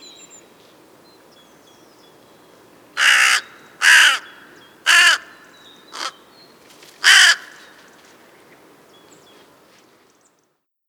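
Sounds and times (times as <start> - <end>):
crow giving harsh raspy caws: 3.0 - 6.2, 7.0 - 7.8.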